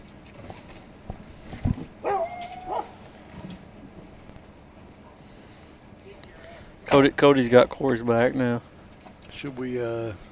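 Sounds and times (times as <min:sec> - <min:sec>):
faint outdoor noise: 0:00.0 - 0:10.2
hunting dog giving a sharp bark: 0:02.0 - 0:03.0
speech: 0:06.9 - 0:08.7, 0:09.4 - 0:10.2.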